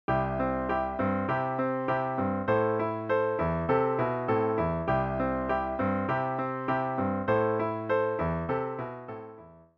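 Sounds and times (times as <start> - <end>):
piano vamp on C and Am chords as a song intro: 0.1 - 9.7.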